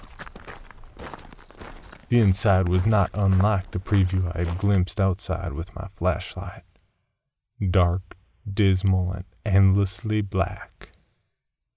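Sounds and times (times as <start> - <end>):
footsteps of two people on loose damp rocky ground walking into a cave: 0.0 - 5.0
gritty scraping: 0.0 - 5.0
speech: 2.1 - 6.7, 7.6 - 10.8.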